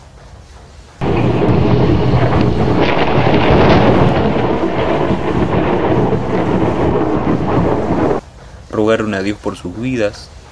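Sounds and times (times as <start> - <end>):
gusting wind: 1.0 - 8.2
rumbling thunder: 1.0 - 8.2
heavy rain: 1.0 - 8.3
speech: 8.9 - 10.4.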